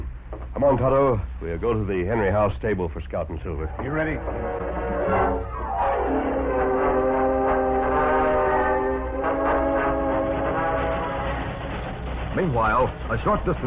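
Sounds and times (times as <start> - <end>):
speeding train rumbling: 0.0 - 13.6
speech: 0.6 - 6.4, 12.4 - 13.6
train horn blaring: 3.7 - 12.0.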